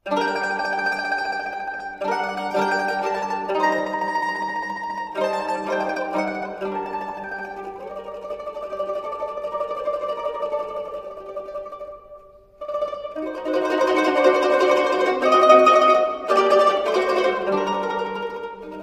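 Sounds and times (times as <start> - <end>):
mandolin: 0.0 - 18.8.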